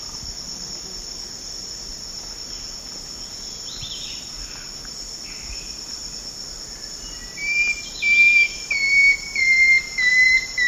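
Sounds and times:
constant shrill insect hum: 0:00.0 - 0:10.6
long-tailed woodcreeper singing sharp whistled notes in South America: 0:07.4 - 0:10.6.

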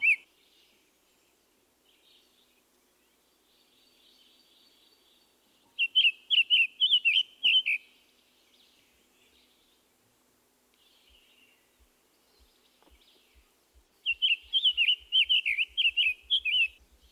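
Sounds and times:
summer tanager song of sing-song whistled phrases: 0:00.0 - 0:00.2, 0:05.7 - 0:07.9, 0:14.0 - 0:17.1.

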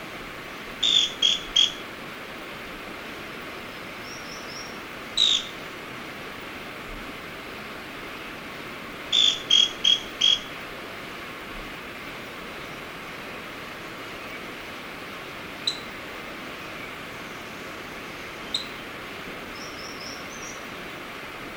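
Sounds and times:
scale-crested pygmy-tyrant song of sharp clipped high notes: 0:00.8 - 0:01.8, 0:04.1 - 0:05.6, 0:09.2 - 0:10.5, 0:15.7 - 0:15.9, 0:18.5 - 0:18.8.

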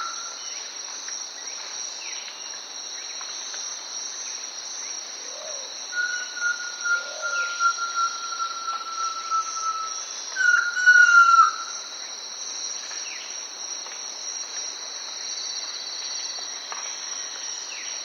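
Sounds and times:
Ochre-Striped Antpitta calling in S. America: 0:05.9 - 0:11.7.

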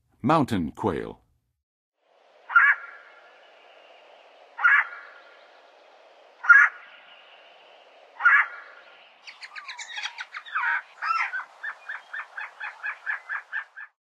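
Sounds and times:
Mountain Quail calling in the western USA: 0:02.5 - 0:03.2, 0:04.6 - 0:05.4, 0:06.4 - 0:07.3, 0:08.1 - 0:14.0.

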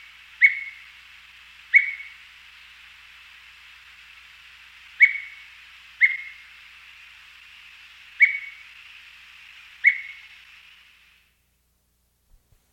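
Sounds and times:
soft steady hiss: 0:00.0 - 0:12.7
gray-headed manakin giving short sharp whistled notes in South America: 0:00.4 - 0:00.9, 0:01.7 - 0:02.2, 0:05.0 - 0:06.5, 0:08.1 - 0:08.8, 0:09.7 - 0:10.6.

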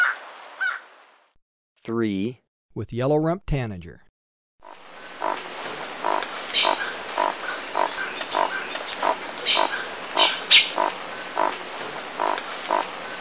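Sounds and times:
speech: 0:01.8 - 0:04.0
constant high insect whine in Ecuador: 0:04.6 - 0:13.2
crimson-rumped toucanet croaking in Ecuador: 0:04.6 - 0:13.2.

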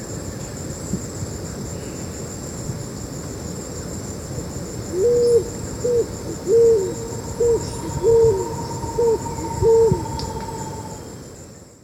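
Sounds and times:
Scaled pigeon cooing in Ecuador: 0:05.0 - 0:11.0.

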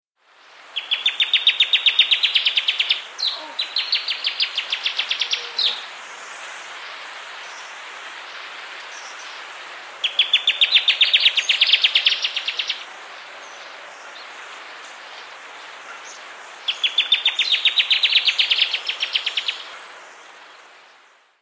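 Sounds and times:
Pacific Antwren from South America: 0:00.8 - 0:05.8, 0:10.0 - 0:12.8, 0:13.4 - 0:19.8.

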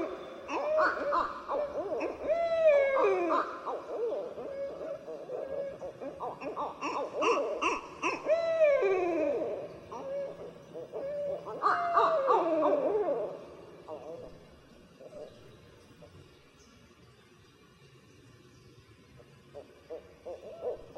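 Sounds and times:
barred owl drawn-out descending wails: 0:00.0 - 0:14.2
barred owl cackling hoots: 0:00.0 - 0:15.4, 0:19.5 - 0:20.9.

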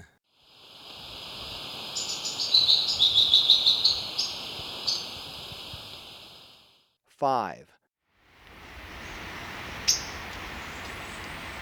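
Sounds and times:
steady high hiss: 0:00.4 - 0:06.8, 0:08.2 - 0:11.6
Gray-throated leaftosser song in Ecuador: 0:01.9 - 0:05.2, 0:08.5 - 0:11.6
speech: 0:07.2 - 0:07.7.

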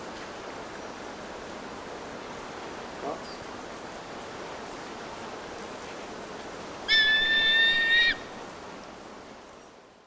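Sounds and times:
solitary eagle calling with a sustained whistle in Ecuador: 0:06.9 - 0:08.3.

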